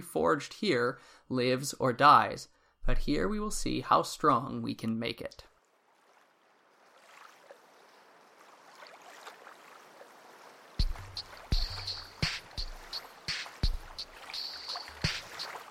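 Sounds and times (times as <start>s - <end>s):
speech: 0.0s - 5.5s
soft wash of waves around a fishing boat off the coast: 5.5s - 15.6s
thumping bumps of a fishing boat hull: 10.8s - 15.6s.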